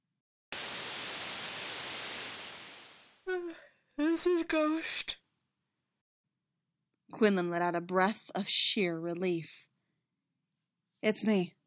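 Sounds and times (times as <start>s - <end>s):
loud radio static over a communicator: 0.6s - 3.2s
speech: 3.4s - 5.2s, 7.1s - 9.7s, 11.0s - 11.6s.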